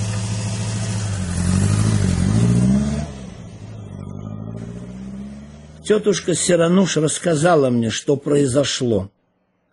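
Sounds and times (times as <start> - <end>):
car engine revving as the car pulls away: 0.0 - 7.0
speech: 5.9 - 9.2.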